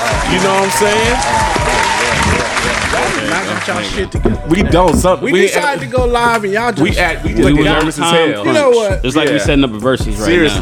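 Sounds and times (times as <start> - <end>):
crowd applause sound effect from a soundboard: 0.0 - 4.2
speech: 0.3 - 10.6.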